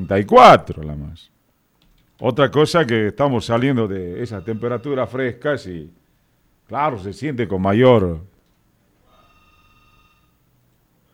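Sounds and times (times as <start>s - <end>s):
telephone ringing: 0.0s - 0.6s, 3.4s - 5.9s, 9.1s - 10.6s
speech: 0.0s - 1.4s, 2.2s - 6.0s, 6.7s - 8.3s
low hum: 0.0s - 11.1s.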